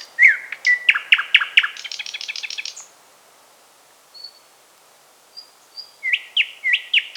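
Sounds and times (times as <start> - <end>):
thrush nightingale singing: 0.0 - 2.9, 5.4 - 7.1.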